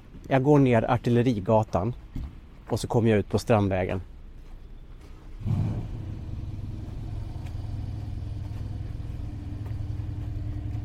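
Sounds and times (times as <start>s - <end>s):
speech: 0.3s - 2.0s, 2.7s - 4.1s
big American car engine starting and rumbling: 5.3s - 10.8s.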